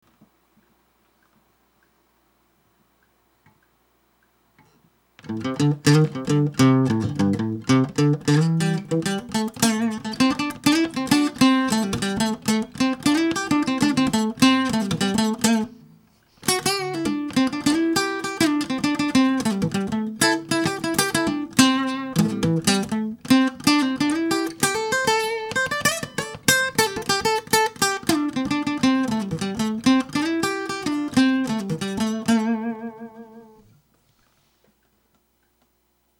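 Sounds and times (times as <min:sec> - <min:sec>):
acoustic 12 bar lead in A minor: 0:05.2 - 0:33.7.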